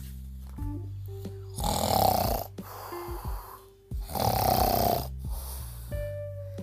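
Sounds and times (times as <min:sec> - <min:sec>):
low tonal sounds: 0:00.0 - 0:06.6
loud snoring: 0:01.6 - 0:05.8.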